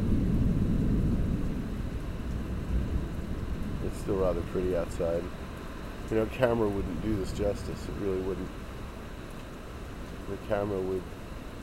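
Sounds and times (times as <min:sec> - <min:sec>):
thunder rumbling from a fading storm: 0:00.0 - 0:08.8
soft rain: 0:00.0 - 0:11.6
speech: 0:03.9 - 0:05.4, 0:06.1 - 0:08.6, 0:10.3 - 0:11.2.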